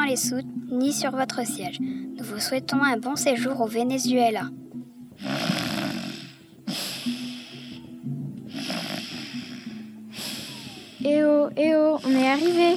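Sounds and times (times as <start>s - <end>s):
speech: 0.1s - 5.5s, 11.0s - 12.7s
person snoring heavily while asleep: 5.2s - 7.9s, 8.5s - 11.2s, 12.0s - 12.7s.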